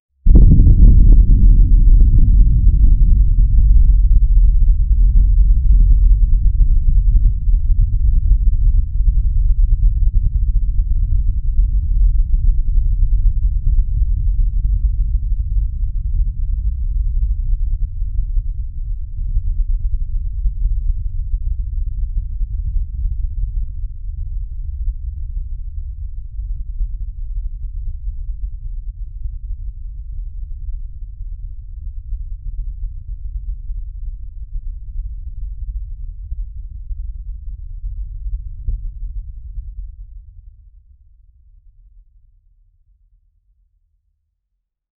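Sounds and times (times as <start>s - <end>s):
deep low frequency volcano rumble: 0.2s - 42.9s.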